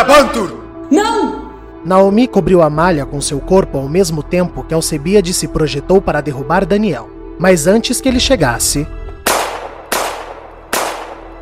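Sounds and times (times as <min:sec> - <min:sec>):
speech: 0:00.0 - 0:09.0
gunshots fired into a young man's chest: 0:09.2 - 0:11.4.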